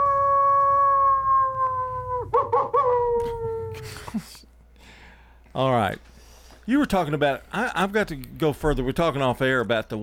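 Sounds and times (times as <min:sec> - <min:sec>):
person imitating a wolf howl: 0:00.0 - 0:04.1
speech: 0:05.6 - 0:06.1, 0:06.7 - 0:10.0.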